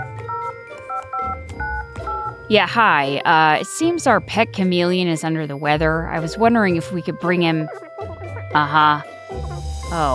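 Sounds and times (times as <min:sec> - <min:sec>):
phone number dialed on a touch-tone keypad: 0:00.0 - 0:02.4
speech: 0:02.5 - 0:07.9, 0:08.5 - 0:10.1.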